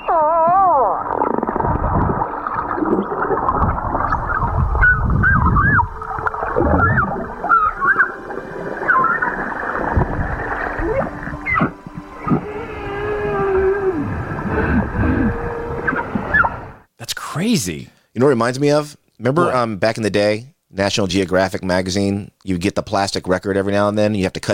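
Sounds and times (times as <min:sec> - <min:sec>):
pod of humpback whales calling underwater in Bermuda: 0:00.0 - 0:16.9
low watery rumble: 0:00.7 - 0:16.9
speech: 0:17.6 - 0:24.5.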